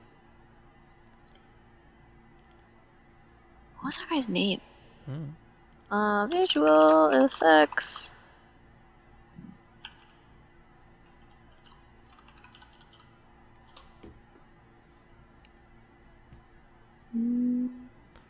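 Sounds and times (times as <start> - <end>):
speech: 3.8 - 8.2
typing on a loud mechanical keyboard: 6.3 - 7.9, 9.8 - 10.2, 11.0 - 13.9.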